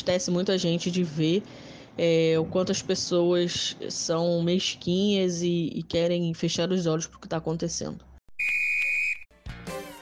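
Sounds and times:
speech: 0.0s - 8.1s
referee's whistle blast: 8.4s - 9.3s.

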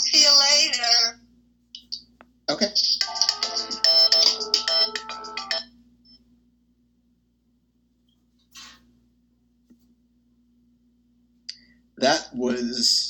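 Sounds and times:
low steady hum: 0.0s - 13.0s
speech: 2.5s - 2.9s, 12.4s - 13.0s
phone ringing with a warbling electronic tone: 2.9s - 5.8s.

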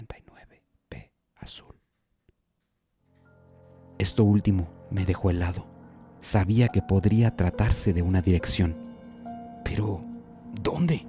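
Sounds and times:
faint breathy whispering from a recorded phone call: 0.0s - 1.9s
speech: 1.5s - 1.7s, 4.0s - 8.9s, 10.6s - 11.0s.

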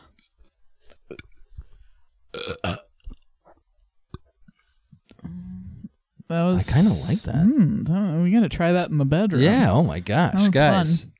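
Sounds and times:
loud drawn-out burp: 2.3s - 2.9s
softer rumbling belch: 2.4s - 2.9s
speech: 6.3s - 11.1s.

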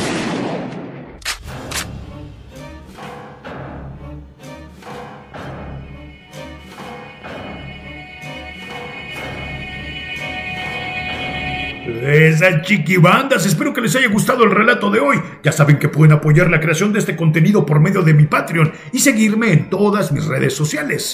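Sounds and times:
revolver gunshots: 0.0s - 1.9s
sustained droning musical background: 1.4s - 20.8s
speech: 12.0s - 21.1s.

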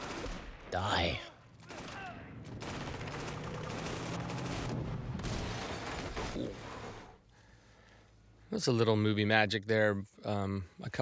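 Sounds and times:
automatic weapon gunfire in an action film scene: 0.0s - 0.5s, 1.6s - 6.3s
speech: 0.7s - 1.3s, 8.6s - 11.0s.

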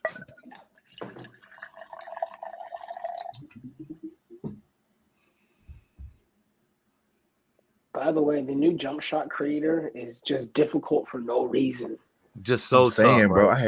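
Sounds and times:
Crown whisky glugging and splashing into a Texas glass: 0.1s - 3.7s
speech: 8.0s - 13.6s.

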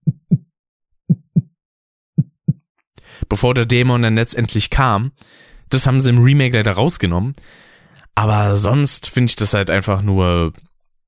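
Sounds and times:
deep heartbeat sound effect: 0.0s - 0.4s, 1.1s - 1.5s, 2.2s - 2.6s
speech: 3.3s - 10.7s.

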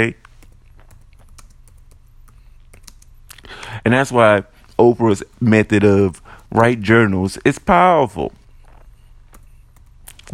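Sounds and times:
speech: 0.0s - 0.2s, 3.8s - 8.4s
rapid typing on a computer keyboard: 0.4s - 3.1s.

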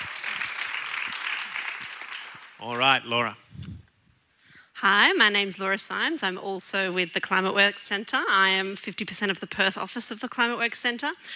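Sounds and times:
audience applause: 0.0s - 3.2s
speech: 2.6s - 3.7s, 4.8s - 11.3s.

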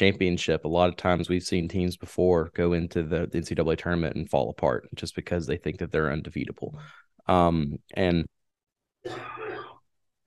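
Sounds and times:
speech: 0.0s - 8.4s, 9.0s - 9.7s
person clearing throat with something caught in the back of the throat: 9.0s - 9.8s.

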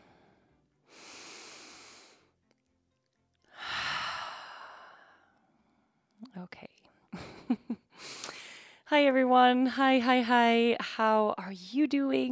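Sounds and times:
person taking a slow deep breath: 0.0s - 2.3s, 3.5s - 5.4s, 7.9s - 8.8s
speech: 8.9s - 12.3s.

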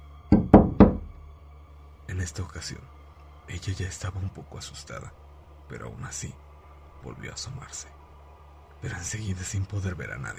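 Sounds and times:
firm knocks on a door: 0.3s - 1.2s
speech: 2.2s - 8.0s, 8.8s - 10.3s.

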